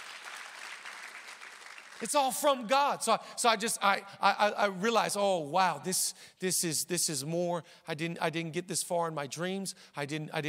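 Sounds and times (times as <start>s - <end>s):
crowd clapping: 0.0s - 2.5s
speech: 2.0s - 10.4s.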